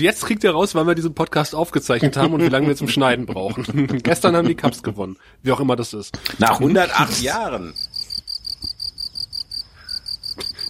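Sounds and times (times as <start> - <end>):
speech: 0.0 - 8.0
laughter: 1.8 - 5.1
cricket chirping: 7.7 - 10.6.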